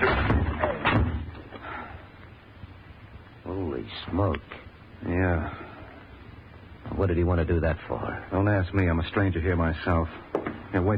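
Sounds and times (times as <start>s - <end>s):
shoulder thuds against wooden door being forced open: 0.0s - 1.3s
speech: 4.1s - 5.6s, 7.0s - 10.9s.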